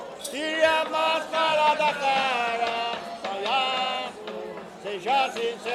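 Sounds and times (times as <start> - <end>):
batuque de umbigada drumming: 0.3 - 5.7.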